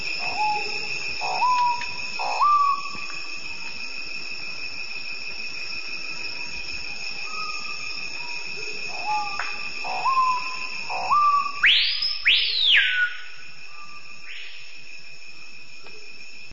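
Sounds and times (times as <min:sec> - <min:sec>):
screaming piha calling: 0:00.2 - 0:03.0, 0:07.2 - 0:14.4.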